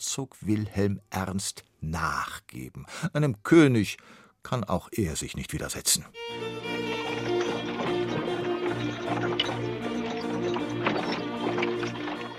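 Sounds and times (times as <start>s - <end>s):
speech: 0.0s - 7.4s
sustained music: 6.2s - 12.3s
horse hooves clip-clopping pulling carts: 6.4s - 12.3s
horse-drawn cart wheels clattering: 6.6s - 12.3s.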